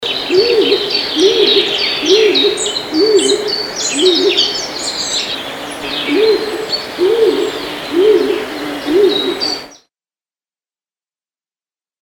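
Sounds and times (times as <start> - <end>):
stock dove cooing: 0.0 - 9.7
small birds chirping and twittering: 0.0 - 9.9.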